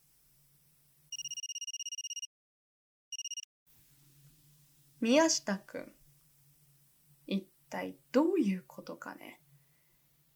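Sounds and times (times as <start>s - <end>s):
mobile phone ringing with an electronic trill: 1.1s - 2.3s, 3.1s - 3.5s
speech: 5.0s - 6.0s, 7.3s - 9.4s.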